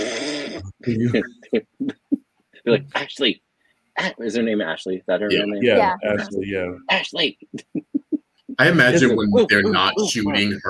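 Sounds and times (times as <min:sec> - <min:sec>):
person imitating snoring: 0:00.0 - 0:00.8
person talking or laughing: 0:00.6 - 0:03.0, 0:05.3 - 0:10.6
speech: 0:00.8 - 0:01.9, 0:02.6 - 0:03.4, 0:04.0 - 0:07.8, 0:08.6 - 0:10.6.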